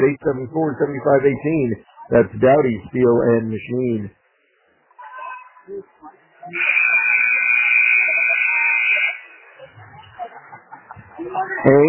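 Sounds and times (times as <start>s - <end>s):
speech: 0.0s - 4.2s, 5.7s - 5.9s, 6.5s - 6.9s, 11.2s - 11.8s
faint crowd murmur in a gym at a basketball game: 0.0s - 11.8s
gym buzzer blaring by mistake at a basketball game: 6.5s - 9.2s
laughter: 9.6s - 11.8s.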